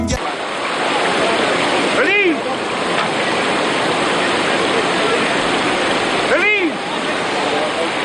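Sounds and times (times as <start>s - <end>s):
flowing river water: 0.1s - 8.0s.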